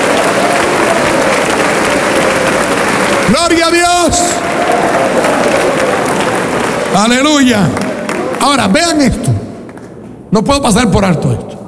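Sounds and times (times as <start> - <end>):
church service audience clapping hands in praise: 0.0 - 9.1
speech: 3.3 - 4.4, 7.0 - 7.8, 8.4 - 9.4, 10.3 - 11.6.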